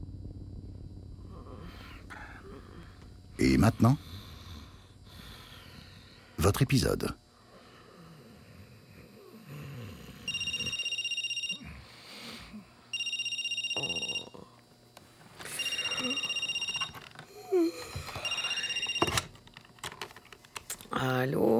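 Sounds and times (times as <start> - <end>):
speech: 3.4 - 4.2, 6.4 - 7.2
telephone ringing with bright electronic tones: 10.3 - 11.7, 12.9 - 14.4, 15.4 - 17.2, 17.9 - 19.4.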